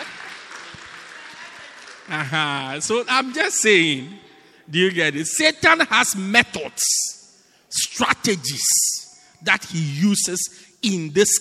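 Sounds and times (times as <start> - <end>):
audience applause: 0.0 - 4.0
speech: 2.1 - 11.3.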